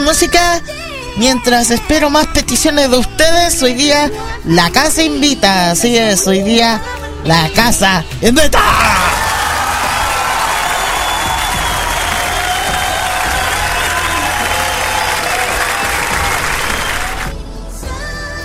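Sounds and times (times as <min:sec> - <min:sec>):
speech: 0:00.1 - 0:09.1
applause sound effect of a large crowd clapping and cheering: 0:08.9 - 0:17.4.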